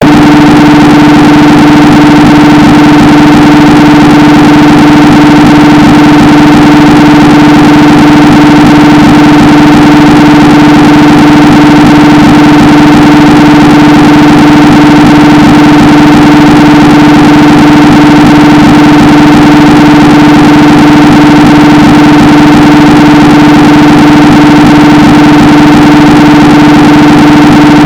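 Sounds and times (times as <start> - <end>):
loud distorted 240 Hz tone: 0.0 - 27.8.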